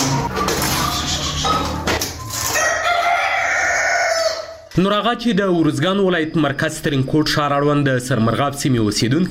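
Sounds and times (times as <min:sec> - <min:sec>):
domestic chickens clucking at a household poultry farm in Tarinkot, Uruzgan, Afghanistan: 0:00.0 - 0:04.7
rooster crowing at a household poultry farm in Tarinkot, Uruzgan, Afghanistan: 0:02.4 - 0:04.7
speech: 0:04.8 - 0:09.2.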